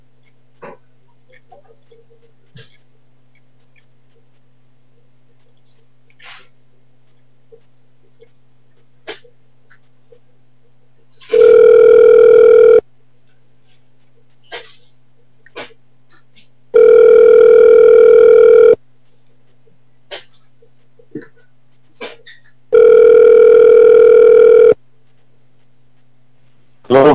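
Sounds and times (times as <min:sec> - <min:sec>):
telephone ringback tone after dialing: 0:11.3 - 0:12.8, 0:16.8 - 0:18.8, 0:22.8 - 0:24.8.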